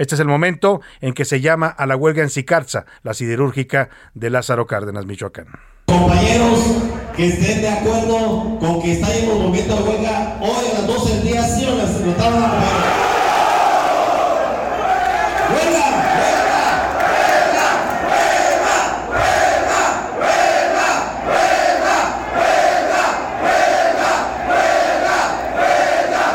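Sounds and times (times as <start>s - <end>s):
speech: 0.0s - 12.8s
crowd of striking workers chanting in unison: 12.7s - 26.3s.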